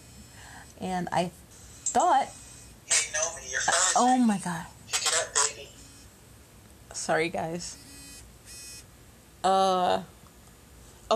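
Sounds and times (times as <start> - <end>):
faint hum: 0.0 - 11.1
speech: 0.8 - 1.4, 2.0 - 3.0, 3.6 - 4.8, 7.0 - 7.8, 9.4 - 10.1
phone ringing with short bright electronic chirps for an incoming spam call: 1.6 - 3.9, 5.1 - 6.2, 7.8 - 8.9.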